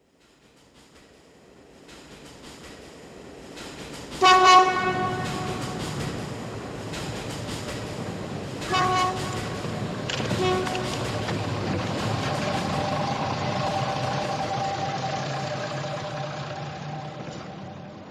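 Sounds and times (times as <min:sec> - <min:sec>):
railcar: 0:00.0 - 0:18.1.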